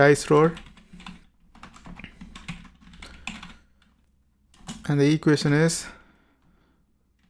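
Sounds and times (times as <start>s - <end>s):
speech: 0.0s - 0.7s, 4.9s - 6.0s
typing a formula on a computer keyboard: 0.4s - 4.9s.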